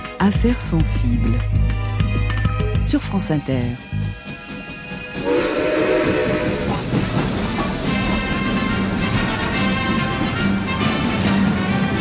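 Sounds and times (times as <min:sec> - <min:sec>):
speech: 0:00.2 - 0:01.7, 0:02.9 - 0:03.9
train cars rolling into a station: 0:03.8 - 0:11.9.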